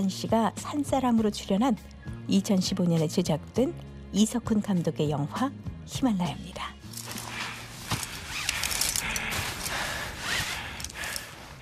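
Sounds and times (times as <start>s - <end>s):
speech: 0.0s - 6.8s
heavy laboured breathing of someone climbing: 7.0s - 11.6s.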